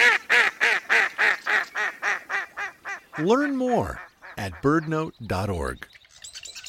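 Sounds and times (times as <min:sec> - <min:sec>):
duck quacking: 0:00.0 - 0:05.1
speech: 0:03.2 - 0:05.9.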